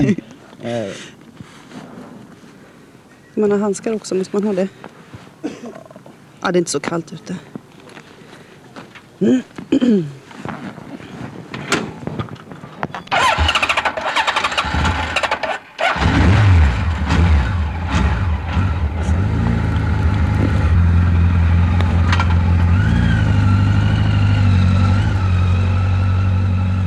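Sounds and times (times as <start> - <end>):
speech: 0.0 - 1.2, 3.4 - 5.6, 6.4 - 7.5, 9.2 - 10.7
motorcycle engine starting and accelerating on a gravel road: 13.1 - 26.8.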